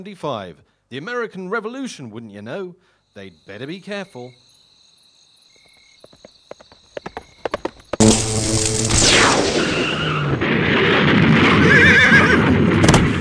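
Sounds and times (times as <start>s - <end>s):
speech: 0.0s - 4.5s
horse hoof clops: 5.6s - 8.0s
sudden loud crash: 8.0s - 11.8s
rumbling roaring noise: 8.0s - 13.2s
horse whinnying shrilly: 11.5s - 12.6s.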